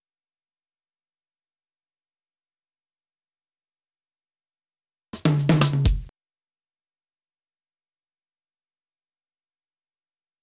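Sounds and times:
drum loop fill at 125 BPM: 5.2 - 6.1.

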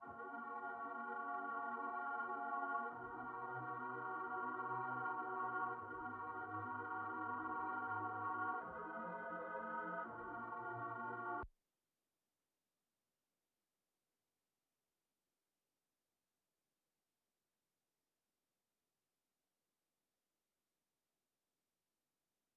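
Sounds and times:
synth pad in D sharp minor: 0.0 - 11.4.

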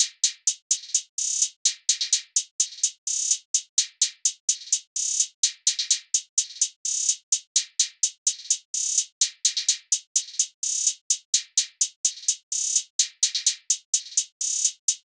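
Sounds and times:
hi-hat drum loop: 0.0 - 15.0.

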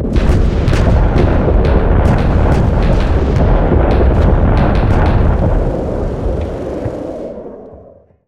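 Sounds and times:
explosions: 0.0 - 7.6.

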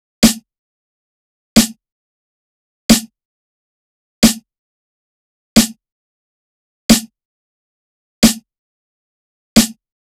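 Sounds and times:
90 BPM boom bap drum loop with snare: 0.2 - 0.4, 1.6 - 1.8, 2.9 - 3.1, 4.2 - 4.4, 6.9 - 7.1, 8.2 - 8.4, 9.6 - 9.8.

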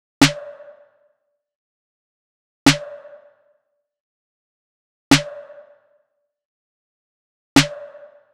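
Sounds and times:
drum loop with snare: 0.2 - 0.6, 2.7 - 3.1, 5.1 - 5.5, 7.6 - 8.1.

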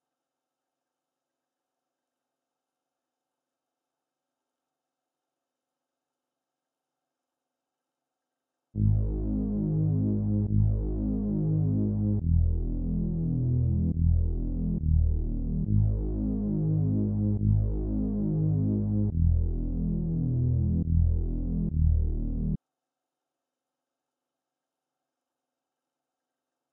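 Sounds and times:
139 BPM G# minor bass melody loop: 8.8 - 22.6.

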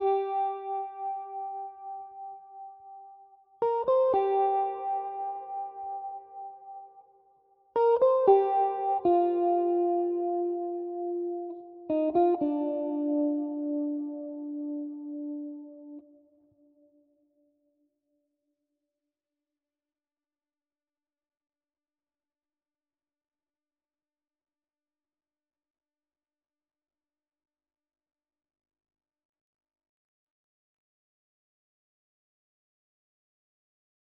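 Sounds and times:
116 BPM C minor guitar loop: 0.0 - 3.0, 3.6 - 6.9, 7.8 - 16.0.

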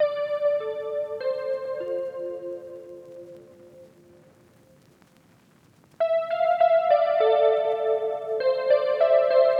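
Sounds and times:
R&B electric piano melody loop in D minor: 0.0 - 3.9, 6.0 - 9.5.

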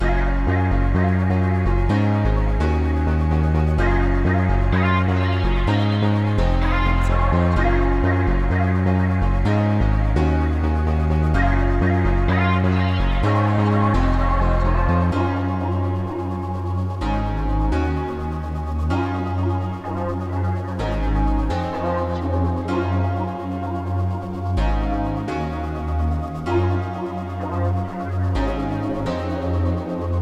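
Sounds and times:
electronic melody at 127 BPM in G sharp minor: 0.0 - 30.2.

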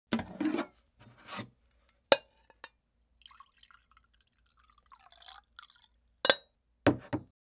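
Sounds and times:
cup picked up and put down: 0.2 - 1.5, 6.3 - 7.3
coffee pouring: 3.2 - 6.4.

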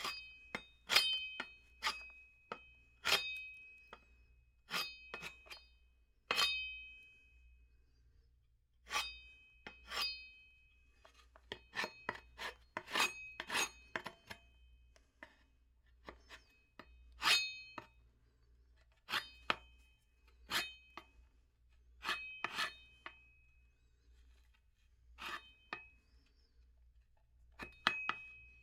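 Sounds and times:
metal tool carving wood: 0.0 - 4.1, 4.7 - 5.7, 6.3 - 6.8, 8.9 - 10.4, 11.0 - 14.5, 16.0 - 18.0, 18.8 - 21.2, 22.0 - 23.3, 25.2 - 26.5, 27.5 - 28.6.

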